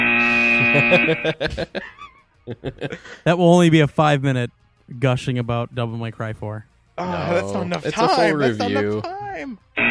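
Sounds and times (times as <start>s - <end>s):
loud harsh electronic buzzer: 0.0s - 1.4s, 9.8s - 9.9s
laughter: 0.4s - 3.3s, 7.3s - 9.5s
speech: 0.7s - 9.9s.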